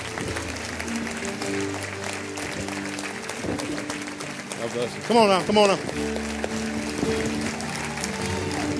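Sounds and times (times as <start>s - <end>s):
crowd clapping: 0.0s - 8.7s
speech: 4.6s - 7.6s
cheer: 6.5s - 8.7s.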